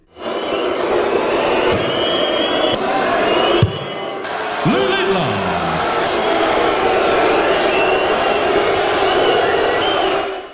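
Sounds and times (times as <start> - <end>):
large crowd of fans roaring and booing at a darts match: 0.0 - 10.5
sharp whistles from crowd of darts fans: 0.2 - 4.2, 7.4 - 10.5.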